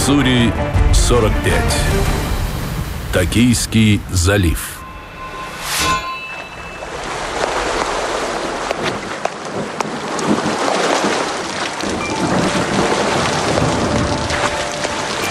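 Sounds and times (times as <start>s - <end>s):
speech: 0.1s - 2.2s, 3.1s - 4.7s
steady heavy rain: 1.3s - 4.2s, 7.0s - 15.2s.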